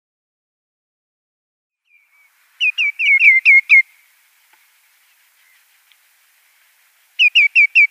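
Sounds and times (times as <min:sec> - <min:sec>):
common greenshank nestling chirping: 0:01.8 - 0:04.0, 0:05.0 - 0:05.7, 0:07.2 - 0:07.8.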